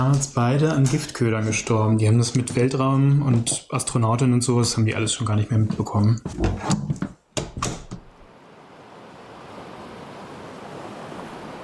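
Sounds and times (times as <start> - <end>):
speech: 0.0 - 6.9
ocean waves washing around a floating capsule: 8.1 - 11.6.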